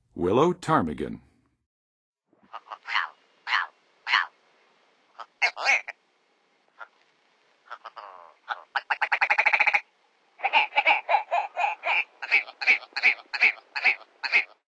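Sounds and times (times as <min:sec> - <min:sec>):
Willow Ptarmigan calling in the Western USA: 0:02.4 - 0:04.4, 0:05.1 - 0:06.0, 0:06.7 - 0:14.6.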